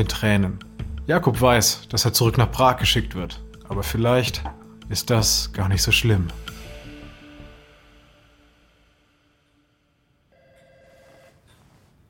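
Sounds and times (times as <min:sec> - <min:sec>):
speech: 0:00.0 - 0:06.6
old-fashioned telephone bell ringing: 0:10.3 - 0:11.6.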